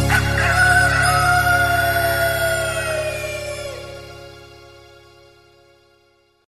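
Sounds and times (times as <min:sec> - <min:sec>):
rooster crowing: 0:00.1 - 0:04.0.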